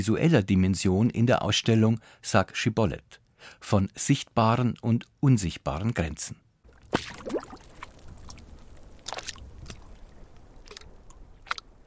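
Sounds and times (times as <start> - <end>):
speech: 0.0 - 7.3
sea water gurgling and lapping against a floating oud's wooden body: 6.7 - 11.8
wet splashes and glugs of water breaking on wood: 6.7 - 11.8.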